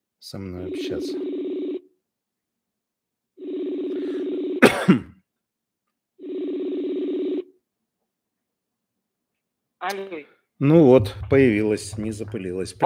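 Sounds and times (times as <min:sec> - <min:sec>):
speech: 0:00.2 - 0:01.5, 0:09.9 - 0:12.8
phone ringback tones as a call is placed: 0:00.6 - 0:01.8, 0:03.4 - 0:04.6, 0:06.2 - 0:07.5
person coughing: 0:04.6 - 0:05.3.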